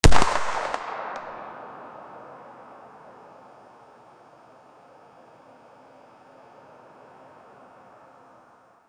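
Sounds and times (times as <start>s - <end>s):
MP5 9mm single shot gunshot: 0.0s - 1.8s.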